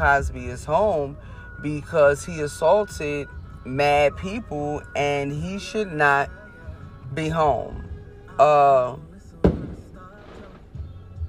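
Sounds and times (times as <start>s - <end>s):
speech: 0.0s - 6.4s, 7.1s - 7.8s, 8.4s - 9.1s
firework bang outside: 9.4s - 10.8s.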